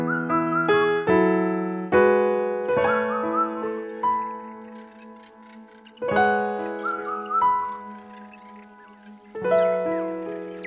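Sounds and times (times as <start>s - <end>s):
slow gentle piano playing chords and single notes: 0.0s - 10.6s
brief high bird-like chirps: 3.1s - 10.6s.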